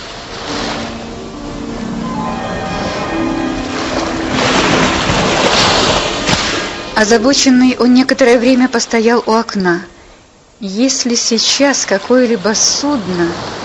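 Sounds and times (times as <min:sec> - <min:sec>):
stormy sea waves crashing on shore: 0:00.0 - 0:09.6, 0:11.5 - 0:13.6
rough sea roaring during a storm: 0:00.0 - 0:13.6
wind during a storm: 0:00.0 - 0:13.6
speech: 0:07.0 - 0:09.9, 0:10.6 - 0:13.6.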